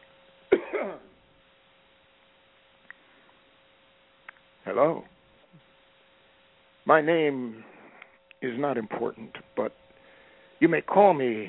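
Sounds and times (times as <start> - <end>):
faint steady hum: 0.0 - 11.4
gruff throat clearing: 0.5 - 1.1
speech: 0.8 - 1.1, 4.7 - 5.1, 6.9 - 7.7, 8.4 - 9.8, 10.6 - 11.4.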